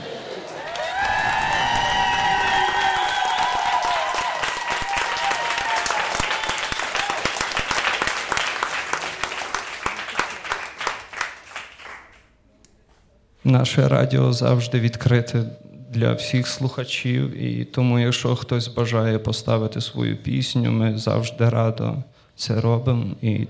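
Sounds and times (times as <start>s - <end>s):
crowd applauding: 0.0s - 12.3s
whoops and cheers: 0.5s - 7.4s
speech: 13.5s - 23.4s.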